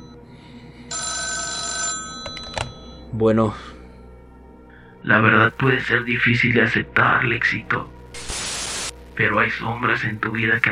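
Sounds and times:
phone booth telephone ringing: 0:00.9 - 0:03.1
handset clicks and clatters as it is picked up: 0:02.2 - 0:02.8
speech: 0:03.1 - 0:03.8, 0:05.0 - 0:08.0, 0:09.2 - 0:10.7.

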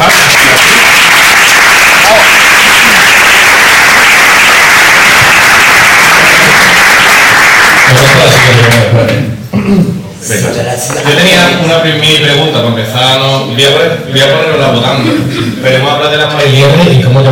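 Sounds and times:
audience applause: 0:00.0 - 0:08.9
speech: 0:09.7 - 0:17.3.

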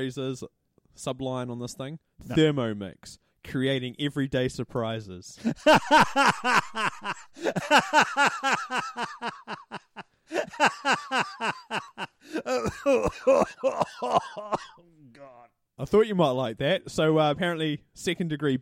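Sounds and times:
speech: 0:00.0 - 0:18.6
laughter: 0:05.4 - 0:14.7
person coughing and clearing throat: 0:12.2 - 0:14.8.

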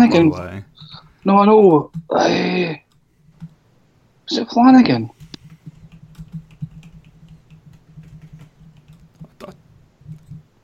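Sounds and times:
low hum: 0:00.0 - 0:10.6
speech: 0:00.1 - 0:02.8, 0:04.3 - 0:05.2
computer keyboard typing: 0:05.2 - 0:09.4.

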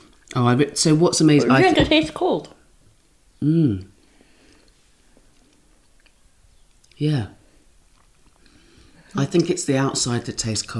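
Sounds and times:
speech: 0:00.4 - 0:02.6, 0:03.4 - 0:03.9, 0:07.0 - 0:07.4, 0:09.2 - 0:10.7
person chewing food: 0:04.4 - 0:09.2.

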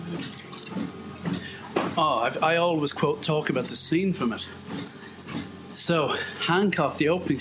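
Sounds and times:
water running or being poured: 0:00.2 - 0:00.8
speech: 0:02.0 - 0:04.8, 0:05.8 - 0:07.3.

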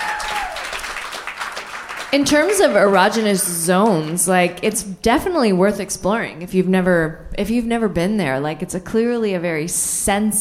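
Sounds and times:
audience applause: 0:00.0 - 0:04.3
speech: 0:02.1 - 0:10.3.

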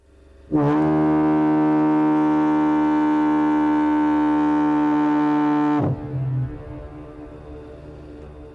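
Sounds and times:
lighthouse foghorn blast on the Hill of Howth in Ireland: 0:00.4 - 0:08.5
faint low rumble: 0:05.8 - 0:08.5.

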